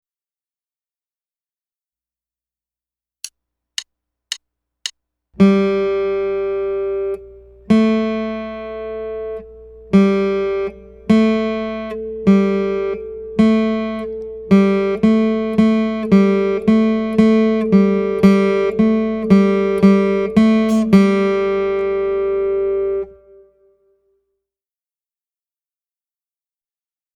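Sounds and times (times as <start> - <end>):
study played on the third string: 5.4 - 23.5.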